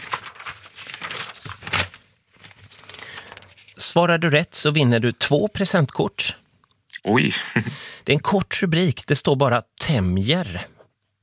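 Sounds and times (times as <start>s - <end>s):
paper rustling and crinkling: 0.0s - 4.0s
speech: 3.8s - 6.4s, 7.0s - 10.7s.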